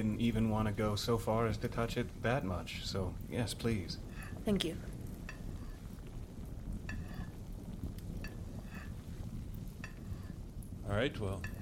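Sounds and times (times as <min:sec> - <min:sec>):
speech: 0:00.0 - 0:05.0, 0:11.0 - 0:11.5
soft hiss: 0:00.0 - 0:11.5
spoon stirring soup in a pot: 0:05.2 - 0:05.8, 0:06.8 - 0:07.4, 0:08.2 - 0:09.2, 0:09.8 - 0:10.4, 0:11.4 - 0:11.5.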